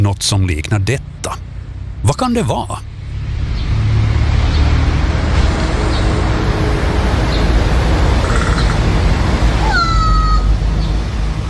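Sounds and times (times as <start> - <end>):
speech: 0.1 - 2.9
steady rush of wind or traffic: 1.0 - 11.4
crow giving a clattering castanet-like rattling call in Tampere: 8.2 - 8.9
crow giving a drawn-out cat-like meow in Tampere: 8.2 - 8.9, 9.6 - 10.5.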